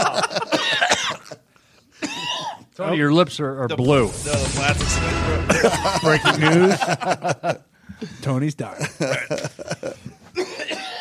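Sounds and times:
laughter: 0:00.0 - 0:00.7, 0:05.3 - 0:07.7, 0:08.8 - 0:10.3
coughs: 0:00.4 - 0:01.4, 0:02.0 - 0:02.7, 0:10.3 - 0:11.0
speech: 0:02.8 - 0:10.0.

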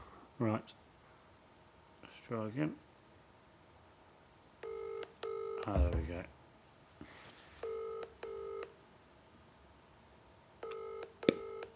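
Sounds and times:
speech: 0:00.4 - 0:00.8, 0:02.3 - 0:02.8, 0:05.7 - 0:06.4
steady electronic telephone tone: 0:04.6 - 0:05.7, 0:07.6 - 0:08.7, 0:10.6 - 0:11.7.

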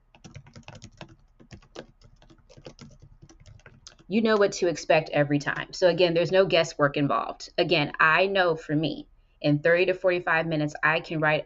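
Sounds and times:
rapid typing on a computer keyboard: 0:00.0 - 0:04.5
speech: 0:04.1 - 0:11.4.

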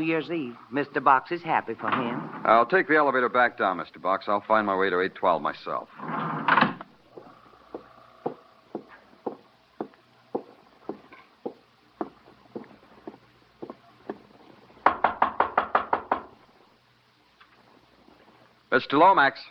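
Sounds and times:
speech: 0:00.0 - 0:06.3, 0:18.8 - 0:19.4
knocking on a wooden hotel room door: 0:07.2 - 0:12.2, 0:14.8 - 0:16.4
heavy pounding on a wooden hotel room door: 0:14.9 - 0:16.3.

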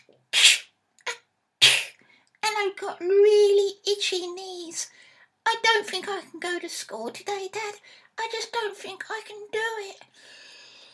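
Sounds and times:
sick boy sneezing: 0:00.0 - 0:02.0
speech: 0:02.6 - 0:10.4.

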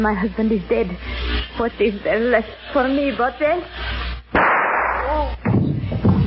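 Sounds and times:
speech: 0:00.0 - 0:03.9
burst of harsh noise: 0:00.8 - 0:06.2
gunshot: 0:04.3 - 0:05.7.

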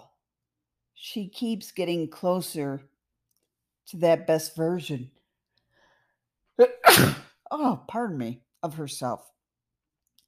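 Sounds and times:
speech: 0:01.0 - 0:02.9, 0:03.9 - 0:05.2, 0:06.6 - 0:09.4
person sneezing: 0:06.6 - 0:07.4.

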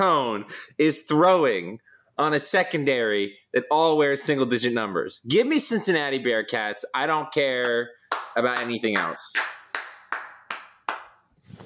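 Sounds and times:
speech: 0:00.0 - 0:09.6
hand claps echoing: 0:07.6 - 0:11.3.

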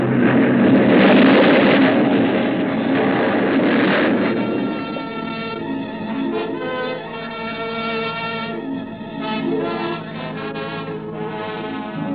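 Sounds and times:
ship crashing onto a reef in fog and exploding: 0:00.0 - 0:08.5
grinding groaning tones: 0:00.0 - 0:12.1.

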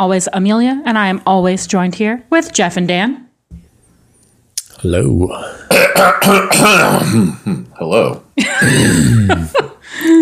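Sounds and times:
speech: 0:00.0 - 0:03.2, 0:04.8 - 0:10.2
throat clearing: 0:05.7 - 0:07.7, 0:08.6 - 0:09.5.

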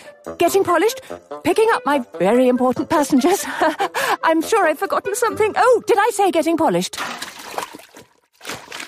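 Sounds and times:
speech: 0:00.2 - 0:07.4
laughter: 0:03.4 - 0:04.2
running water splashing at an engine washdown: 0:07.0 - 0:08.8.

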